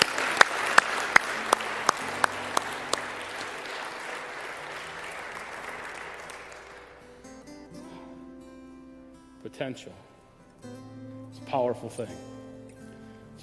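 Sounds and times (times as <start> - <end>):
sharp louder claps: 0.0 - 7.2
church audience applause during a morning service: 0.0 - 7.3
speech: 9.6 - 10.8, 11.5 - 12.3.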